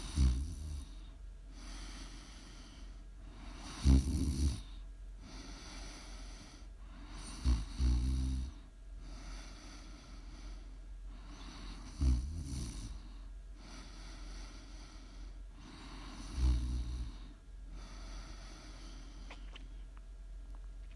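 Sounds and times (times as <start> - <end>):
heavy snoring with rasping breaths: 0.0 - 1.0, 3.6 - 4.7, 7.1 - 9.9, 11.4 - 13.0, 15.6 - 18.8.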